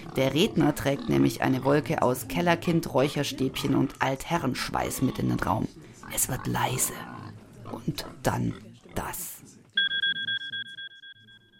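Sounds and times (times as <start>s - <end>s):
speech: 0.2s - 9.3s
faint low murmur of voices: 4.4s - 10.8s
smartphone email notification tone pulsing during a speech: 9.8s - 11.5s.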